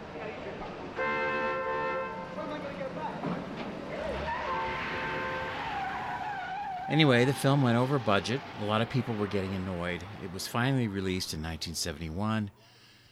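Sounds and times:
dense loud rumble of traffic: 0.0 - 12.3
car tires screeching in a car chase: 0.8 - 11.6
car engine roaring past in a car chase: 2.1 - 12.1
speech: 6.9 - 12.7.

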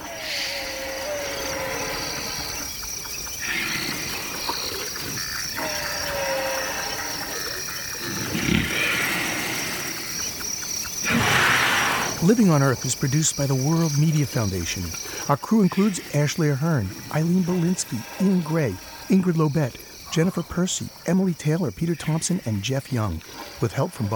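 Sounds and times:
elephants snoring while sleeping in Maasai Mara Park, Kenya: 0.0 - 10.4, 11.0 - 12.8, 14.8 - 20.2
outdoor chorus of insects and crickets humming through the night air: 0.0 - 24.1
speech: 12.2 - 24.1.

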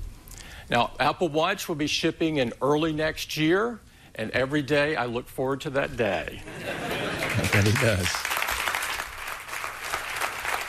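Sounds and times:
speech: 0.7 - 8.3
laughter: 6.4 - 8.1
small crowd applauding at a product event: 7.2 - 10.6.

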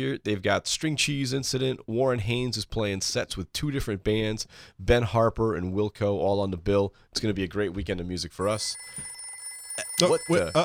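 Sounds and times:
speech: 0.0 - 9.2, 9.8 - 10.6
telephone ringing with high electronic tone: 8.4 - 10.6.

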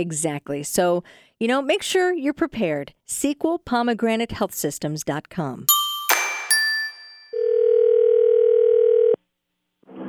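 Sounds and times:
speech: 0.0 - 5.8
bright ding: 5.7 - 7.4
steady telephone tone: 7.3 - 9.2.

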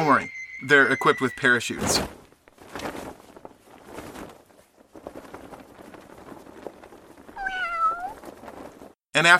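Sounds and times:
speech: 0.0 - 2.2, 9.2 - 9.3
drawn-out cat meow: 7.4 - 8.2.

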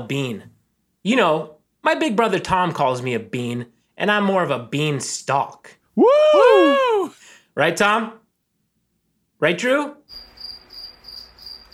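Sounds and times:
speech: 0.0 - 8.2, 9.4 - 10.2
crickets chirping: 10.1 - 11.7.

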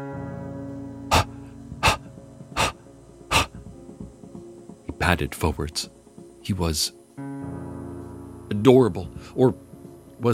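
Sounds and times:
beagle puppy's wet rapid panting breath: 1.1 - 3.6
speech: 5.0 - 7.0, 8.6 - 9.6.

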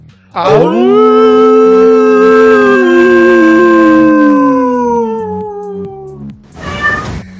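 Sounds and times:
speech: 0.3 - 1.1
several voices imitating a group howl: 0.4 - 6.2.

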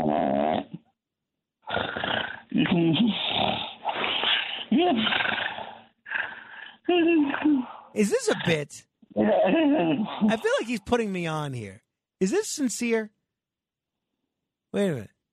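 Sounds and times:
caller snoring over a band-limited telephone line: 0.0 - 0.8, 1.6 - 8.6
speech: 2.8 - 3.2, 8.0 - 13.2, 14.7 - 15.2.

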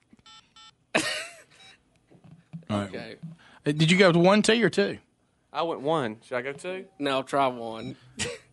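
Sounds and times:
cell phone keypad tones beeping as a number is dialed: 0.3 - 0.7
sudden loud harsh cough: 1.0 - 1.4, 8.2 - 8.5
speech: 2.7 - 8.4.

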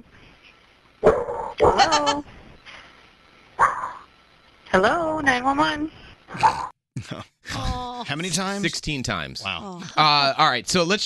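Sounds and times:
dog left home alone barking: 1.0 - 1.8, 3.6 - 4.1
speech: 1.8 - 2.3, 4.7 - 7.3, 8.0 - 11.0.

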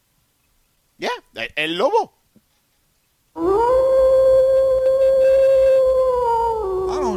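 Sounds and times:
speech: 1.0 - 2.2
wolf howling: 3.4 - 7.1.

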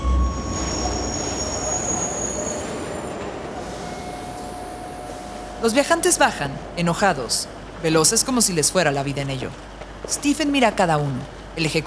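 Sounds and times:
train wheels squealing on rails: 0.0 - 6.3
train pulling into a station platform, wheels and carriages rumbling: 0.0 - 11.6
speech: 5.6 - 11.8.

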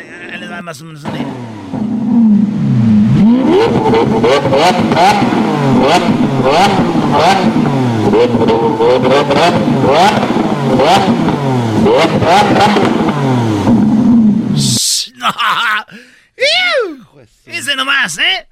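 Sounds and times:
voice imitating a Lamborghini car engine revving: 0.0 - 1.4, 2.0 - 13.4, 14.0 - 15.8
speech: 0.6 - 2.5, 3.3 - 13.6
laughter: 15.0 - 17.2.

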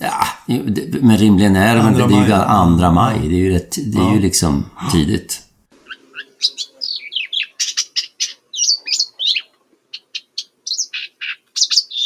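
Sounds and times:
speech: 0.5 - 5.4
Blyth's Reed Warbler singing migrant song: 5.8 - 12.0.

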